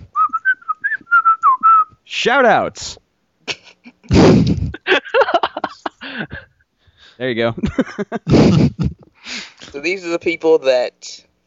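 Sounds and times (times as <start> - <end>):
person whistling a tune: 0.0 - 1.9
speech: 2.2 - 3.0, 7.2 - 9.0, 9.7 - 11.2
laughter: 3.4 - 6.6, 7.6 - 9.2.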